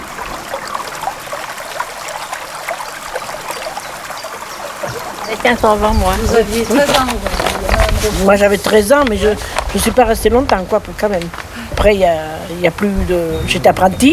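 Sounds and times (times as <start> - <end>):
canal water pouring into a river: 0.0 - 14.1
speech: 5.3 - 14.1.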